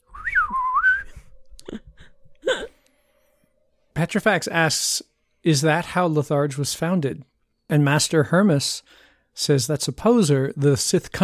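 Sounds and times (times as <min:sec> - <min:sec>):
person whistling a short wavering tune: 0:00.0 - 0:01.4
speech: 0:04.0 - 0:11.2.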